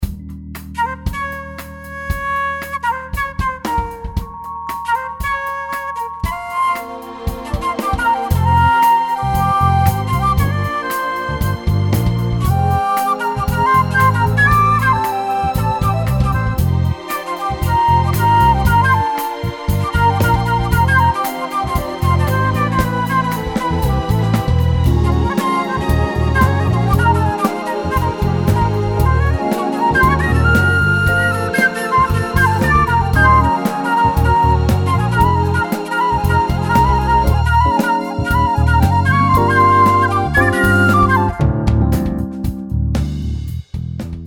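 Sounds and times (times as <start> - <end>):
funk flutes playing: 0.6 - 43.2.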